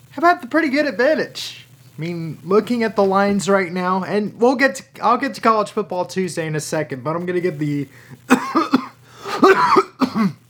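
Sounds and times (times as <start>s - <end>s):
speech: 0.2s - 8.6s, 9.5s - 10.4s
person coughing harshly: 8.3s - 10.4s.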